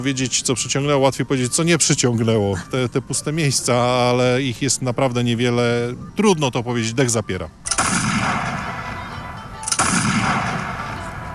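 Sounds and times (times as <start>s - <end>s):
speech: 0.0s - 7.8s
steady wash of noise: 0.0s - 11.3s
cannon shot booming in a wide open space: 7.7s - 9.0s, 9.7s - 11.3s.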